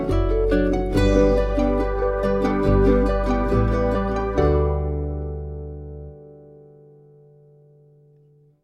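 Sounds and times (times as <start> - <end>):
calm upbeat music: 0.1 - 6.0.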